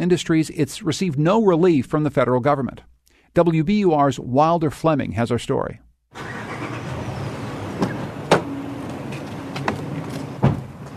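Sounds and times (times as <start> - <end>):
speech: 0.0 - 6.3
pickup truck engine rumbling: 6.1 - 10.9
pickup truck door slamming shut: 7.7 - 8.6, 9.6 - 10.8.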